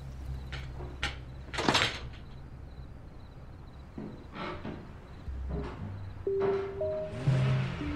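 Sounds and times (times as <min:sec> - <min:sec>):
door eased open and shut with a soft creak: 0:00.5 - 0:02.4, 0:04.0 - 0:07.8.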